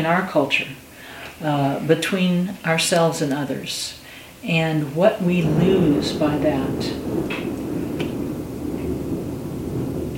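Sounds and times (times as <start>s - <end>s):
speech: 0.0s - 7.5s
thunder rumbling: 4.8s - 10.1s.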